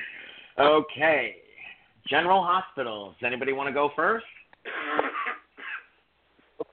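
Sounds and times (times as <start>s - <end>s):
speech: 0.6s - 1.4s, 2.1s - 4.4s
man coughing: 4.6s - 6.0s.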